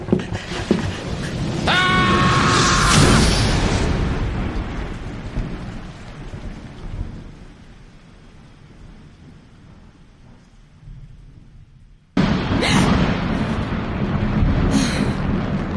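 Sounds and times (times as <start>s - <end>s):
steady rain: 0.0s - 15.7s
thunder rumbling in a close thunderstorm: 0.0s - 15.7s.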